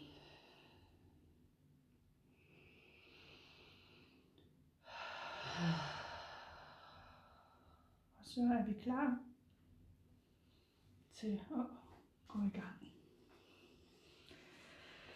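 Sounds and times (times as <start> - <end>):
deep breath in and out: 0.0 - 1.3, 2.2 - 8.1, 13.3 - 15.1
speech: 8.4 - 9.3, 11.2 - 13.0.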